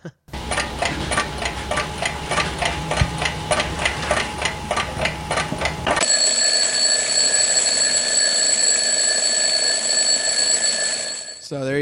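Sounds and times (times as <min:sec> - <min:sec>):
analog alarm clock ticking: 0:00.3 - 0:11.5.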